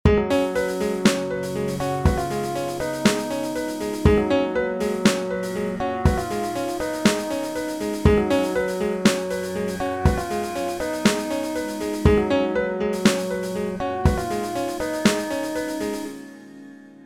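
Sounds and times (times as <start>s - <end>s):
music jam on a sofa: 0.3s - 16.1s.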